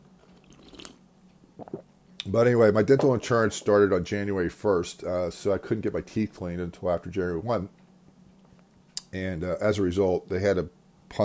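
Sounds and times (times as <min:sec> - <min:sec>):
person sipping coffee: 0:00.1 - 0:02.3
swallow: 0:00.2 - 0:01.9
speech: 0:02.3 - 0:07.8, 0:09.1 - 0:11.2.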